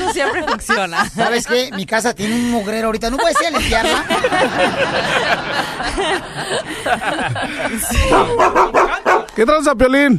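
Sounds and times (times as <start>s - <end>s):
laughter: 0.0s - 9.3s
speech: 0.1s - 10.1s
dog barking and yipping excitedly: 8.0s - 9.4s.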